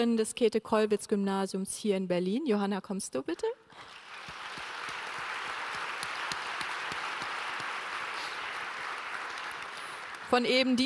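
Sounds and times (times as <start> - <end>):
speech: 0.0 - 3.9, 10.3 - 10.8
audience applause: 3.7 - 10.8.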